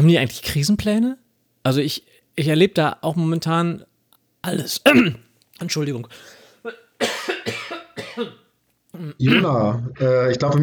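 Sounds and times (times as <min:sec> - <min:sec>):
speech: 0:00.0 - 0:07.6, 0:08.2 - 0:10.6
person coughing after choking on a piece of nut: 0:04.9 - 0:05.2, 0:06.6 - 0:09.5.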